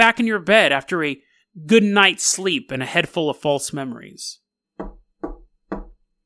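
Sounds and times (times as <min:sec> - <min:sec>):
speech: 0:00.0 - 0:04.9
knocking on a wooden door: 0:04.8 - 0:06.1.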